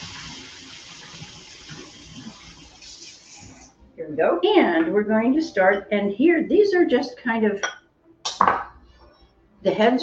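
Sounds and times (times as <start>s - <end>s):
hot tap water running over an opened tin of skinned sardines: 0.0s - 3.7s
speech: 4.0s - 7.8s, 9.6s - 10.0s.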